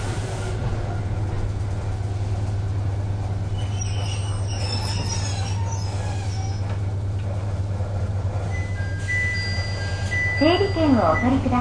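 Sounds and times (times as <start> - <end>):
stationary local electric train humming and rumbling: 0.0 - 11.5
faint high-pitched whines and squeaks: 3.6 - 6.8, 8.5 - 11.5
speech: 10.4 - 11.5.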